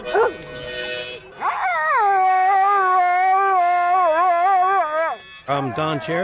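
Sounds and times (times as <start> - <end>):
Akita and Chow mix dog howling at a dog singing contest: 1.4 - 6.2
speech: 5.6 - 6.2.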